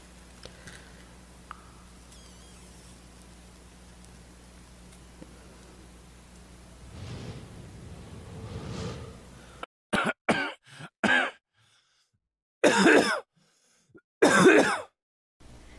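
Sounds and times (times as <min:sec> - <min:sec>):
smoker's harsh phlegmy coughs: 0:09.9 - 0:11.4, 0:12.6 - 0:13.3, 0:14.2 - 0:15.0.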